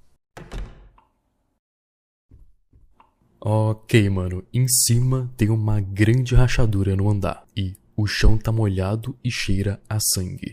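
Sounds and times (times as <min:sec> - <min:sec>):
door opening clunk: 0:00.4 - 0:01.0
soft knocks and rattles: 0:00.4 - 0:01.0
speech: 0:03.4 - 0:10.5.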